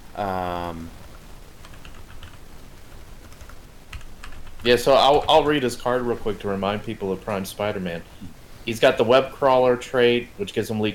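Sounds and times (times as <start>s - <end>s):
speech: 0.2s - 1.0s, 4.6s - 10.9s
soft typing on a computer keyboard: 1.6s - 2.4s, 3.2s - 5.3s.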